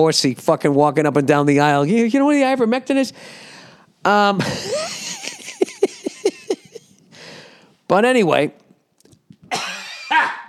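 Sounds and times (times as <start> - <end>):
speech: 0.0 - 4.9, 7.9 - 8.6
harsh raspy coughs from a person with a scratchy throat: 9.5 - 10.4.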